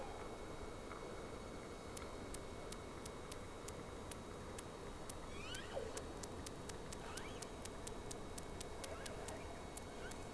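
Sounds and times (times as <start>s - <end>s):
background hiss: 0.0s - 10.3s
sharp clicks: 2.0s - 10.3s
whale whistles: 5.3s - 6.0s, 7.0s - 7.4s.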